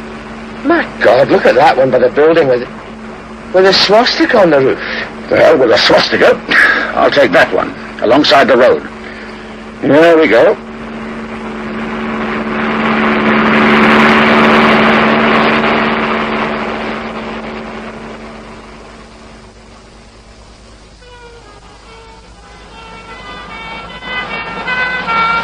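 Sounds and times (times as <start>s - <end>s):
broad engine roar: 0.0s - 25.4s
low steady drone: 0.0s - 25.4s
ambulance sirens wailing on a road: 0.2s - 19.4s, 21.0s - 25.4s
speech: 0.6s - 2.8s, 3.5s - 8.9s, 9.8s - 10.6s.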